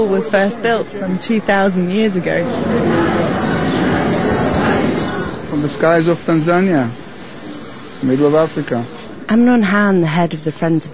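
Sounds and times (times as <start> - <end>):
speech: 0.0 - 3.5, 5.6 - 7.0, 8.0 - 10.9
steady dense noise: 0.0 - 10.9
swift chicks calling from nests in cracks of an ancient wall: 2.5 - 9.3.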